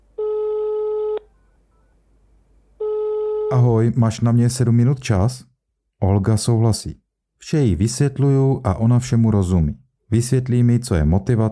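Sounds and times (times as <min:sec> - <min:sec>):
electronic phone ringback tone: 0:00.2 - 0:01.9, 0:02.8 - 0:03.6
speech: 0:03.6 - 0:11.5.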